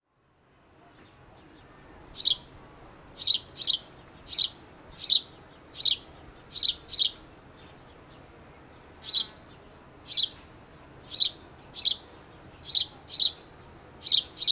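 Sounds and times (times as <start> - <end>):
house sparrow Passer domesticus chirping: 2.1 - 2.5, 3.2 - 8.0, 9.0 - 9.5, 10.1 - 10.4, 11.1 - 14.5.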